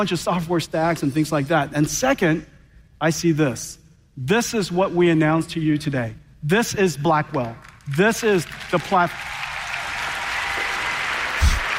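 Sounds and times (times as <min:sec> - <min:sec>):
speech: 0:00.0 - 0:09.4
audience clapping at a technology keynote: 0:07.3 - 0:11.7.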